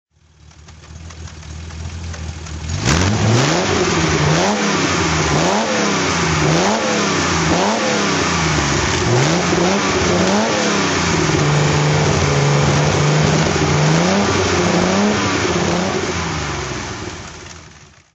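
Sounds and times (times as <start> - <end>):
Healey 100-6 engine with three Weber carburettors revving: 0.9 - 17.7.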